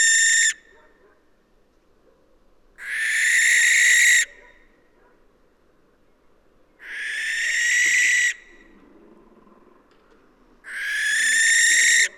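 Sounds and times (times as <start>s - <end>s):
barn owl Tyto alba shrieking: 0.0s - 0.6s, 2.8s - 4.4s, 6.8s - 8.6s, 10.7s - 12.1s.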